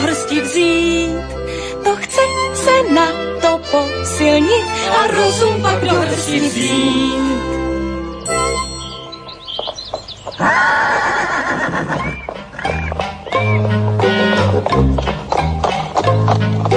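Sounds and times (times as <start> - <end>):
full busy music: 0.0 - 10.4, 11.4 - 16.7
speech: 3.7 - 8.7, 10.4 - 12.2
horse hooves clip-clopping with light jingling: 8.5 - 16.7
horse being ridden neighing loudly: 10.4 - 14.6.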